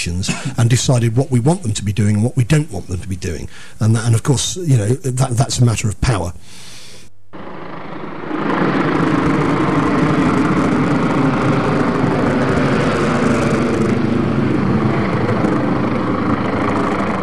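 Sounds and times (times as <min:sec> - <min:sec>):
speech: 0:00.0 - 0:06.7
police helicopter droning overhead at night: 0:07.3 - 0:17.2.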